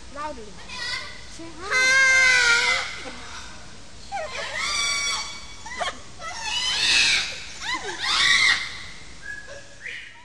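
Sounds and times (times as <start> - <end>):
speech: 0.2 - 0.8, 1.4 - 1.9
parrot giving harsh squawking screeches: 0.6 - 3.4, 4.1 - 8.9.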